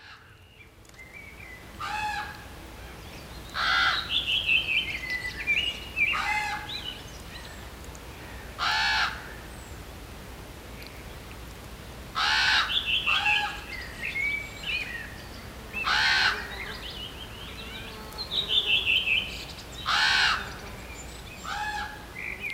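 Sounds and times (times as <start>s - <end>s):
blackbirds and redwings singing: 0.0s - 22.5s
adult common ravens croaking and gurgling: 1.8s - 2.5s, 3.6s - 4.4s, 6.1s - 6.9s, 8.2s - 9.4s, 12.2s - 13.7s, 15.8s - 16.7s, 19.8s - 20.7s, 21.4s - 22.2s.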